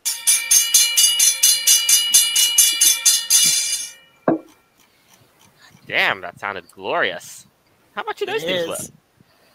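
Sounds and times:
railroad crossing bell ringing: 0:00.0 - 0:04.7
dull thump: 0:04.3 - 0:04.5
speech: 0:05.9 - 0:09.0.

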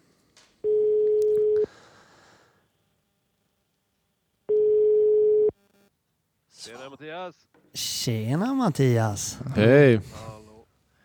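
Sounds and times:
outgoing phone call ringing tone: 0:00.6 - 0:01.7, 0:04.5 - 0:05.5
speech: 0:06.7 - 0:10.4.

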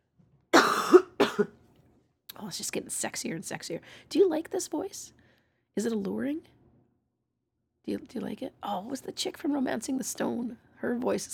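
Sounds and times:
harsh raspy coughs: 0:00.6 - 0:01.5
speech: 0:01.4 - 0:01.6, 0:02.5 - 0:05.2, 0:05.8 - 0:06.6, 0:07.9 - 0:11.3.

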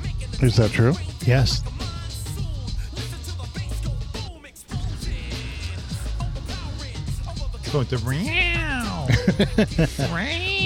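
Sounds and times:
short rhythmic voiced bursts: 0:00.0 - 0:10.6
speech: 0:00.4 - 0:01.8, 0:07.7 - 0:10.6
cat meowing: 0:08.2 - 0:09.1
laughter: 0:08.8 - 0:10.6.

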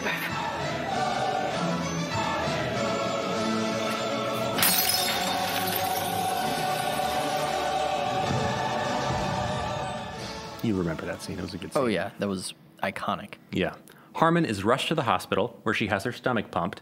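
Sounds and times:
music: 0:00.0 - 0:12.4
glass jar full of capsules smashing on a hard floor: 0:04.4 - 0:07.6
capsules and glass fragments scattering across the floor: 0:04.4 - 0:07.9
speech: 0:10.7 - 0:16.7.

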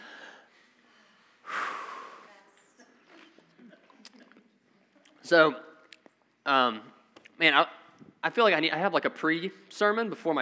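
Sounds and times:
group taking one deep breath together after a prayer: 0:00.0 - 0:02.5
speech: 0:05.3 - 0:05.7, 0:06.4 - 0:10.4.

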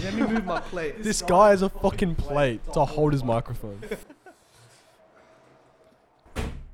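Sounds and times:
laughter: 0:00.0 - 0:01.2, 0:03.7 - 0:04.9
speech: 0:00.1 - 0:04.2
door shut with a loud sharp slam: 0:06.3 - 0:06.7.

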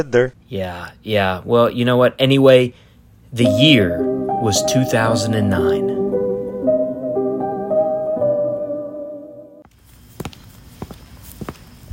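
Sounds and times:
speech: 0:00.0 - 0:06.0
sustained tonal music-like passage: 0:03.4 - 0:09.6
crisp footsteps walking: 0:09.7 - 0:11.9.

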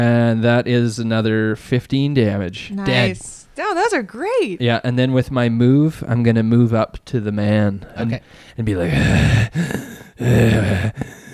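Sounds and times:
speech: 0:00.0 - 0:11.2
voice imitating heavy menacing breathing: 0:08.0 - 0:11.3.

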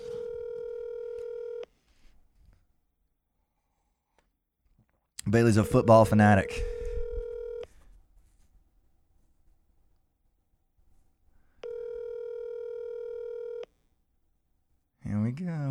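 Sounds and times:
telephone ringback tone: 0:00.0 - 0:01.7, 0:05.5 - 0:07.7, 0:11.6 - 0:13.7
speech: 0:05.3 - 0:06.8.

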